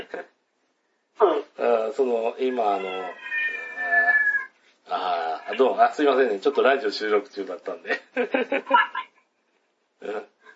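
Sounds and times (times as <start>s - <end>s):
speech: 1.2s - 4.0s, 4.9s - 9.1s, 10.0s - 10.3s
cat meowing: 2.5s - 4.6s.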